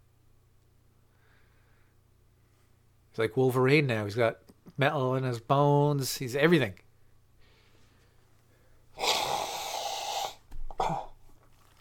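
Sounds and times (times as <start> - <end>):
speech: 3.2 - 6.8
short sharp sniffs or snorts: 9.0 - 10.4
person sneezing: 9.0 - 11.2.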